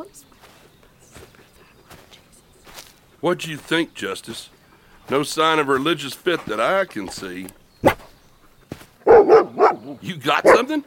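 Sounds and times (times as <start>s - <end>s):
speech: 0.0s - 0.3s, 3.2s - 7.6s, 9.9s - 10.8s
dog barking: 7.8s - 8.2s, 9.0s - 10.8s.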